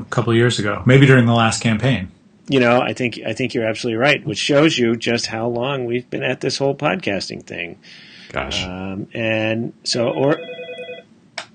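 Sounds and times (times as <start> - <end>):
speech: 0.1 - 10.6
mobile phone ringing with electronic ringtone: 10.1 - 11.1.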